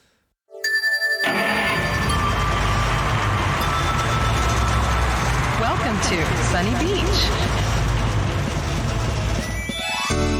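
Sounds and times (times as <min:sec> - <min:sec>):
tonal chime in racing video game audio: 0:00.6 - 0:05.6
racing video game music: 0:00.6 - 0:10.3
speech: 0:06.1 - 0:07.6.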